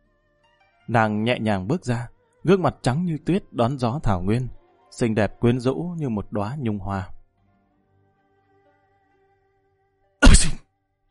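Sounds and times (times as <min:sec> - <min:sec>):
speech: 0:00.9 - 0:07.2
person sneezing hard after stepping out of a courier post station: 0:10.2 - 0:10.6.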